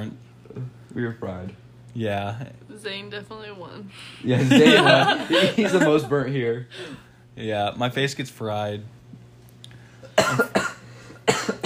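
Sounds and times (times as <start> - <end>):
low steady hum: 0.0 - 11.6
speech: 1.0 - 9.0, 10.2 - 10.5
laughter: 4.2 - 6.6
person coughing: 10.0 - 11.6.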